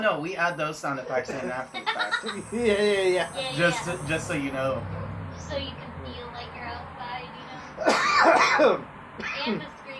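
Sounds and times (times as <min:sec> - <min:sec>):
speech: 0:00.0 - 0:06.2, 0:08.2 - 0:09.8
laughter: 0:01.1 - 0:03.1
coughing and throat clearing as a deliberate vocal effect: 0:07.8 - 0:09.4.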